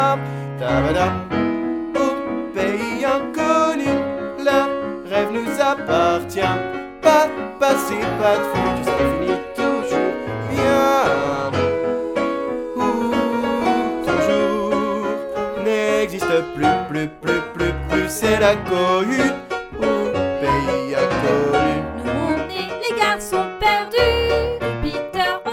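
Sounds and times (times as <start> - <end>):
choral bass voices singing: 0.6 - 25.5.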